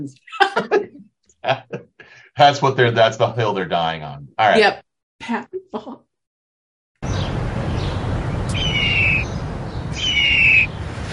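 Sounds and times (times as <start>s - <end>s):
speech: 0.0s - 1.8s, 2.4s - 5.9s
laughter: 0.3s - 3.5s
steady low rumble of noise: 7.0s - 11.1s
hawk screeching cries: 8.5s - 10.7s.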